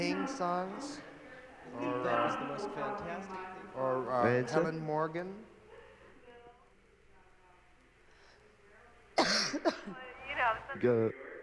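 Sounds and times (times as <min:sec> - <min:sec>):
speech: 0:00.0 - 0:05.5, 0:09.5 - 0:11.3
woman coughing: 0:09.2 - 0:10.0.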